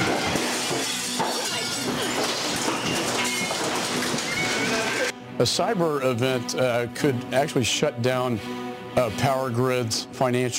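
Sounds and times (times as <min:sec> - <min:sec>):
large hailstones pounding and shattering: 0:00.0 - 0:05.1
speech: 0:05.4 - 0:10.5.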